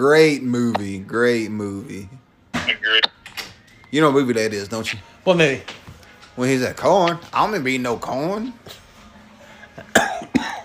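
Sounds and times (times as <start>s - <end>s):
speech: 0.0s - 3.1s, 3.9s - 5.8s, 6.4s - 8.8s
person coughing: 9.9s - 10.6s.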